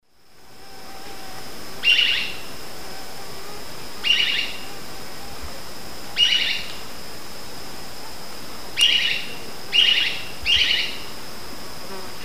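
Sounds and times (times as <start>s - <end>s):
Conopias parvus calling in eastern lowlands of South America: 1.8s - 2.4s, 4.0s - 4.7s, 6.2s - 6.8s, 8.8s - 11.1s.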